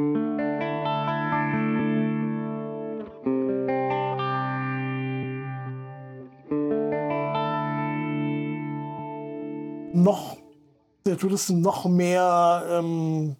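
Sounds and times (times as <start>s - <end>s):
guitar chords through Uni-Vibe and phaser modulation effects: 0.0s - 9.9s
speech: 10.0s - 10.4s, 11.2s - 13.3s.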